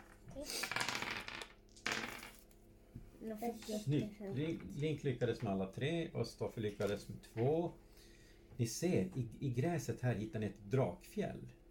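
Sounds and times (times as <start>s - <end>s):
dice clattering and rattling across a hard surface: 0.0s - 2.6s
speech: 0.4s - 0.6s, 3.2s - 7.8s, 8.6s - 11.6s.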